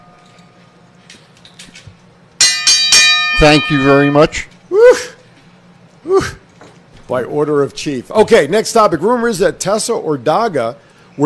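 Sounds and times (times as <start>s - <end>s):
single bright metallic bell strike: 2.4s - 4.4s
speech: 3.4s - 5.1s, 7.1s - 11.2s.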